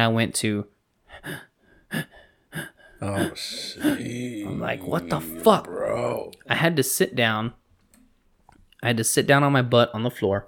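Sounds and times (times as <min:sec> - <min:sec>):
speech: 0:00.0 - 0:02.1, 0:03.0 - 0:07.6, 0:08.8 - 0:10.4
person imitating desperate gasping for air: 0:01.1 - 0:06.5.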